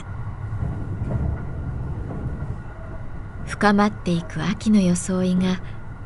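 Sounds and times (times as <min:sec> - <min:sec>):
train carriages rattling: 0:00.0 - 0:04.7
limited express train running on rails: 0:00.0 - 0:06.0
speech: 0:03.5 - 0:05.8.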